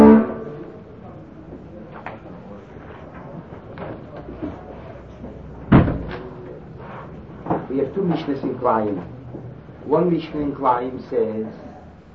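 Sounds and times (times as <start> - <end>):
shuffling in a room: 1.8 - 9.7
door thudding shut: 5.7 - 6.2
speech: 7.9 - 9.2, 9.8 - 11.6.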